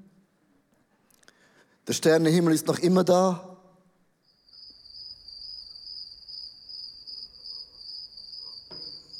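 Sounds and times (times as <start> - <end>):
speech: 1.9 - 3.5
crickets chirping at night in a high-pitched trill: 4.0 - 9.1.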